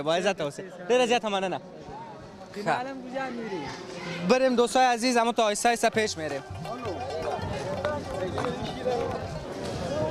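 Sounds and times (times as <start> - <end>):
speech: 0.0 - 2.0, 2.6 - 7.0
crowd hubbub in a crowded market lane in Jalalabad Afghanistan: 0.0 - 10.0
scattered footsteps in a market lane: 5.8 - 10.0.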